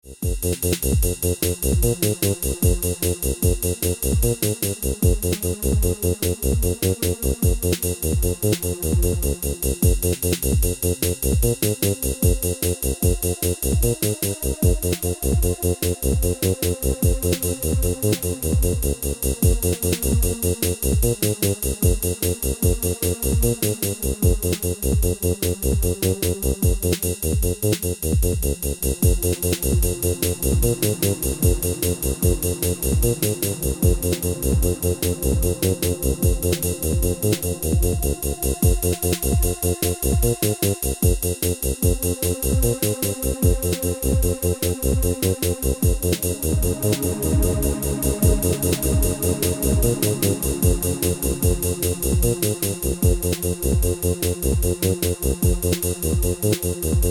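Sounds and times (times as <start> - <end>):
Paia synth bass: 0.0 - 57.0.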